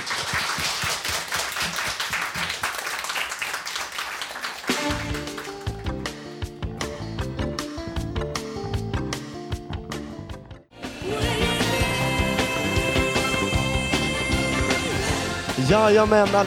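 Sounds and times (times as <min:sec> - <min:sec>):
studio audience applauding a guest after an interview: 0:00.0 - 0:05.9
radio music bed: 0:04.6 - 0:16.4
speech: 0:15.7 - 0:16.4.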